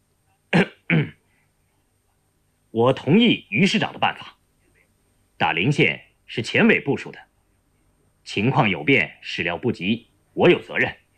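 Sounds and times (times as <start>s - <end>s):
dry cough clearing a throat: 0.5s - 1.2s
speech: 2.8s - 4.4s, 5.4s - 7.3s, 8.2s - 11.0s.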